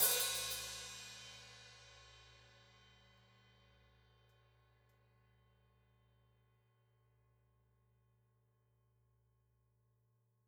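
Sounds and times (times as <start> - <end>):
hi-hat splash: 0.0 - 0.8.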